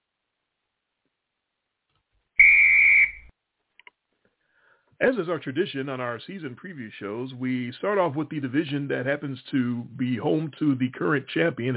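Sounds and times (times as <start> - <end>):
referee's whistle blast: 2.4 - 3.3
speech: 5.0 - 11.7.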